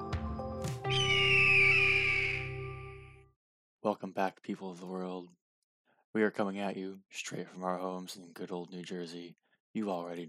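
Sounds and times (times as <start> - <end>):
hawk raspy screech: 0.9 - 2.5
speech: 3.8 - 5.4, 6.1 - 10.2.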